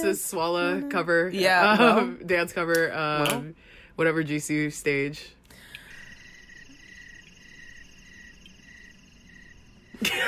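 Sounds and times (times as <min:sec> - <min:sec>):
speech: 0:00.0 - 0:05.4, 0:10.0 - 0:10.2
crickets chirping in a nighttime ambience: 0:05.6 - 0:10.2.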